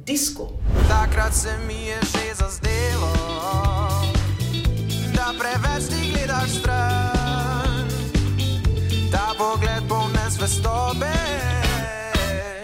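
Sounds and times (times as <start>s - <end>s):
speech: 0.0s - 3.7s
lead singer's melodic pop vocals: 0.4s - 12.6s
drums in a pop song: 0.6s - 12.6s
steady bass in a pop song: 0.8s - 12.6s.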